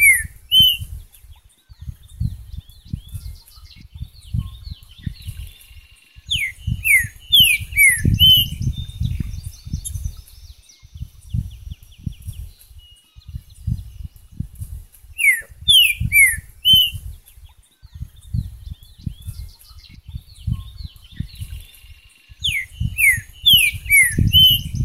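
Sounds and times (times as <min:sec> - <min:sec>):
green-winged saltator Saltator similis whistling falling notes: 0:00.0 - 0:01.0, 0:06.2 - 0:09.8, 0:15.2 - 0:17.1, 0:22.3 - 0:24.8
soft bird chatter: 0:00.0 - 0:24.8
low rumbling thumps: 0:01.8 - 0:05.6, 0:06.3 - 0:10.3, 0:10.9 - 0:12.5, 0:13.3 - 0:14.9, 0:18.0 - 0:21.6, 0:22.4 - 0:24.8.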